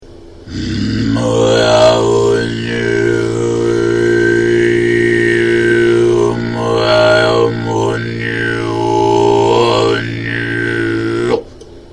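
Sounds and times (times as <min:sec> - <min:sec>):
kargyraa and khoomei throat singing: 0:00.5 - 0:11.6.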